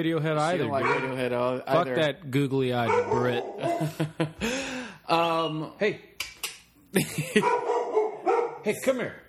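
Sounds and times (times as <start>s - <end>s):
speech: 0.0s - 6.1s, 6.9s - 7.7s, 8.6s - 9.2s
dog barking: 0.8s - 1.2s, 2.8s - 4.0s, 7.4s - 8.7s
laughter: 3.6s - 4.7s, 6.9s - 7.6s.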